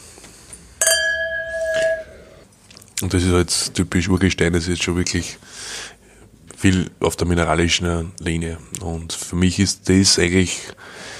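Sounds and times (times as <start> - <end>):
glasses of Veltliner wine clinking in a toast: 0.8 - 2.2
speech: 3.0 - 6.0, 6.6 - 11.1.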